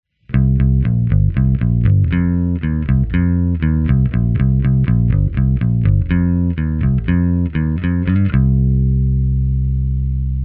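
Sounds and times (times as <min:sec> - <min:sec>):
bass guitar played with plectrum: 0:00.3 - 0:10.4.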